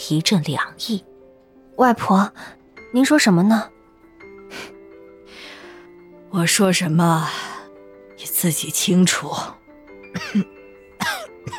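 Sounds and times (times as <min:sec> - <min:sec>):
speech: 0:00.1 - 0:01.1, 0:01.8 - 0:03.8, 0:04.5 - 0:04.8, 0:06.3 - 0:07.5, 0:08.2 - 0:09.6, 0:10.2 - 0:10.5
ill elderly woman coughing hoarsely: 0:10.1 - 0:11.5.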